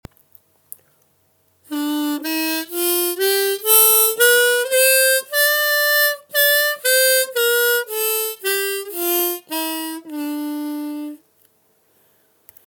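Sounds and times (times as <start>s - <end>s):
harmonica: 1.7s - 11.2s.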